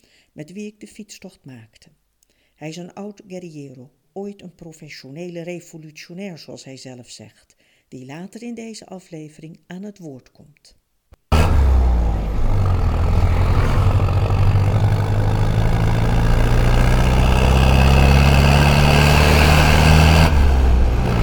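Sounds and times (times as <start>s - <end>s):
speech: 0.4s - 2.0s, 2.6s - 10.8s
road traffic roar with deep engine rumble on a reopened street: 11.3s - 21.2s.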